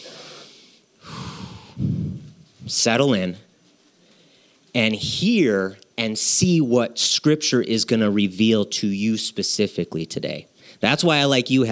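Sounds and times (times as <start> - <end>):
deep breath drawn in and let out: 0.0 - 2.3, 4.0 - 4.7
speech: 2.7 - 3.5, 4.8 - 11.7.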